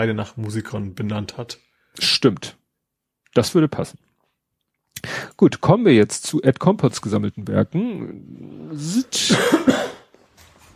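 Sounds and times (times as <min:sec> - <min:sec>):
speech: 0:00.0 - 0:02.6, 0:03.3 - 0:04.1, 0:05.0 - 0:09.9
harsh coughing fit: 0:08.8 - 0:10.1.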